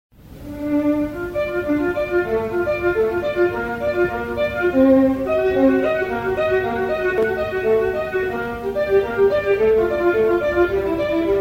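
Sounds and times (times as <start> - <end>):
violin excerpt: 0.2 - 11.3.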